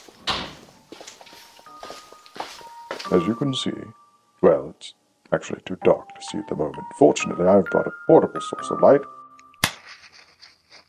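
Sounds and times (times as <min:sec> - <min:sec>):
door pushed shut with a sharp thud: 0:00.2 - 0:00.7
speech: 0:03.1 - 0:09.2.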